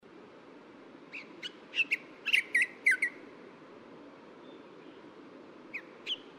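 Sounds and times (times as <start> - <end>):
Bronzed drongo calling with squeaky twanging notes at Yushan: 1.1 - 3.2.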